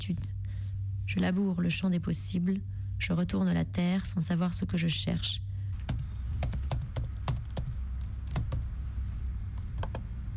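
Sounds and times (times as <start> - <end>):
speech: 0.0 - 0.4, 1.1 - 5.5
low steady hum: 0.0 - 10.3
typing on a computer keyboard: 5.8 - 8.7.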